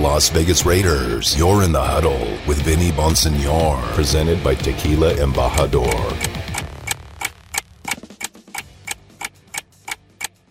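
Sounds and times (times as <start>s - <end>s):
speech: 0.1s - 6.4s
clock ticking: 4.6s - 10.4s.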